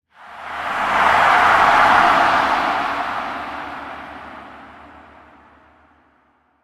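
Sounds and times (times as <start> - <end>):
sports hype swell: 0.2 - 6.1.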